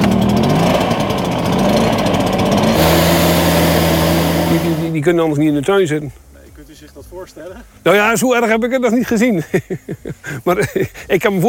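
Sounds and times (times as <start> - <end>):
leaf blower blowing a garden clean of beetles: 0.0 - 5.0
speech: 5.0 - 11.4
laughter: 9.1 - 11.2.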